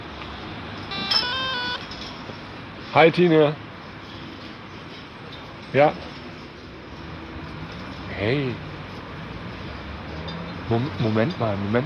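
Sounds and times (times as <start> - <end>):
telephone ringing with an incoming call in a café: 0.8 - 1.9
speech: 2.9 - 3.6, 5.7 - 6.1, 8.2 - 8.7, 10.7 - 11.8.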